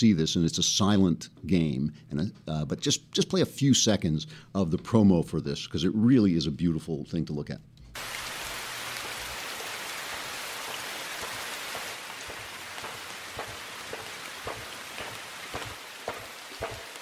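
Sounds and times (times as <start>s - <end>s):
speech: 0.0s - 8.1s
steady rainfall in a video game trailer: 8.0s - 17.0s.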